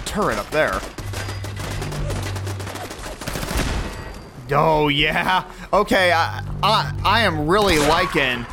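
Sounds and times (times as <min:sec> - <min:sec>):
rapid 10mm auto pistol gunfire in a video game: 0:00.0 - 0:04.0
speech: 0:00.1 - 0:01.0, 0:04.5 - 0:08.5.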